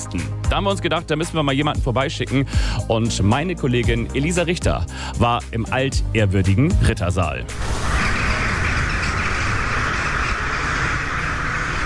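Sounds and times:
speech: 0.0 - 7.9
many crows calling outdoors in a castle garden: 7.6 - 11.8.

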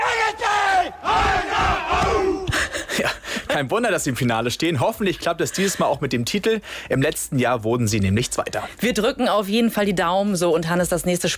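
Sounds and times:
goalball team shouting together to psych up before a match: 0.0 - 2.5
speech: 3.6 - 11.3.

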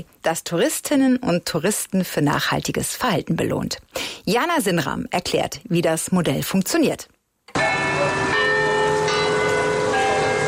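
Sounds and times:
speech: 0.0 - 7.1
faint city background: 0.0 - 10.4
carillon bells chiming in a city hall tower: 7.5 - 10.4.

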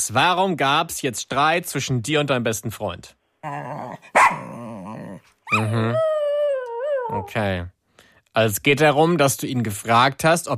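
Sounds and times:
speech: 0.0 - 4.4, 5.5 - 6.1, 7.1 - 7.8, 8.4 - 10.5
dog barking, yelping and howling: 3.5 - 7.3.

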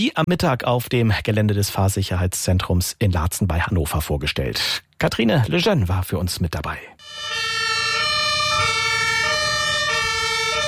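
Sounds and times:
speech: 0.0 - 7.2
fire brigade, police and ambulance sirens wailing in a two-tone pattern: 7.0 - 10.6.

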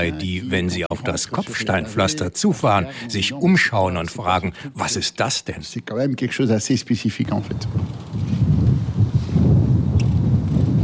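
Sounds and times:
speech: 0.0 - 8.4
strong wind blowing across open race circuit: 7.2 - 10.8.

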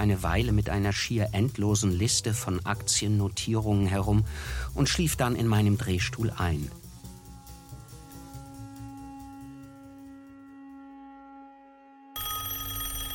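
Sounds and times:
speech: 0.0 - 6.8
telephone bell ringing: 12.2 - 13.1.

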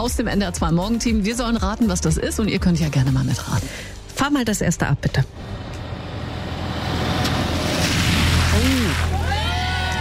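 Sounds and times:
speech: 0.0 - 5.6
truck driving through a deep puddle: 6.5 - 9.3.

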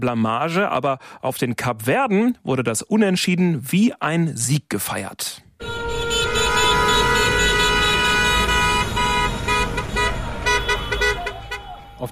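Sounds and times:
speech: 0.0 - 5.8
car horns honking in street celebration in Cape Verde: 5.6 - 12.1
rumble of traffic on a busy street in Cape Verde: 5.6 - 12.1.

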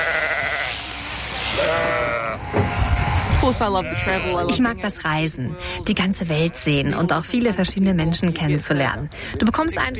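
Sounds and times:
sheep bleating while being sheared: 0.0 - 2.5, 3.6 - 4.6
speech: 3.5 - 9.9.

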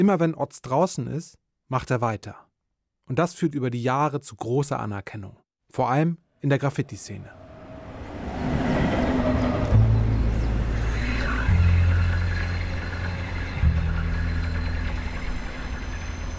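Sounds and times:
speech: 0.0 - 2.5, 3.1 - 7.4
S-Bahn commuter train rumbling and rattling past: 7.0 - 16.3.

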